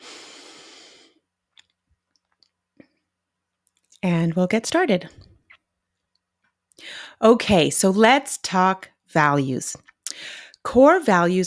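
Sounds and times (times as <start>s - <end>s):
single long deep breath: 0.0s - 1.2s, 6.8s - 7.2s, 10.1s - 10.6s
speech: 4.0s - 5.2s, 7.2s - 11.4s.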